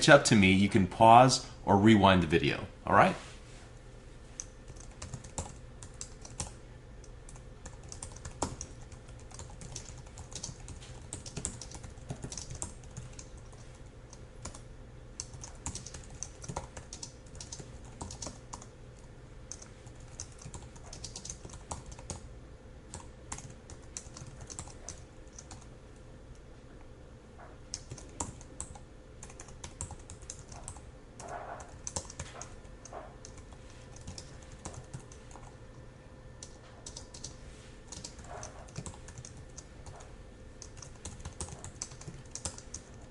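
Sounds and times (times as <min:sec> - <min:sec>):
speech: 0:00.0 - 0:03.3
faint hum: 0:00.0 - 0:43.0
typing on a computer keyboard: 0:04.4 - 0:06.6, 0:07.3 - 0:14.6, 0:15.2 - 0:18.7, 0:19.5 - 0:22.2, 0:22.9 - 0:25.7, 0:27.7 - 0:35.6, 0:36.4 - 0:43.0.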